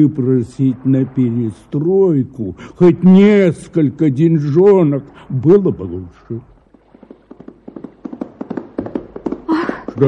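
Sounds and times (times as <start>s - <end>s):
speech: 0.0s - 6.5s
horse hooves clip-clopping on a hard surface: 6.7s - 10.0s.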